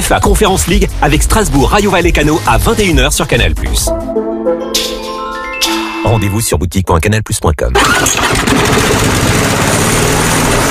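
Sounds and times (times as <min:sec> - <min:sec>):
speech: 0:00.1 - 0:05.0, 0:05.6 - 0:09.7
lawn mower engine running: 0:07.8 - 0:10.7.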